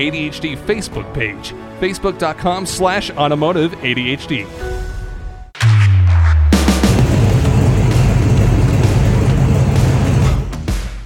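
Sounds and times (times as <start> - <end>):
speech: 0.0 - 4.9
car engine rumbling: 6.2 - 10.4.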